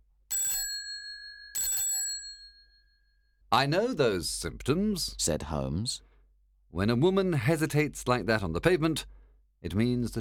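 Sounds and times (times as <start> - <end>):
doorbell chime on a London street: 0.3 - 3.4
speech: 3.5 - 6.1, 6.7 - 10.1.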